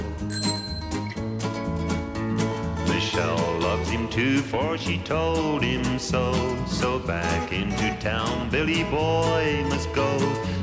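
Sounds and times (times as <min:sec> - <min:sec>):
musical backing: 0:00.0 - 0:10.6
bicycle bell ringing: 0:00.2 - 0:01.4
speech: 0:03.2 - 0:10.6.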